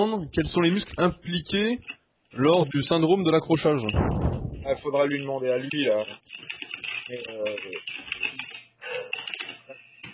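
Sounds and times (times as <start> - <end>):
speech: 0.0 - 8.4
typing on a computer keyboard: 6.3 - 9.6.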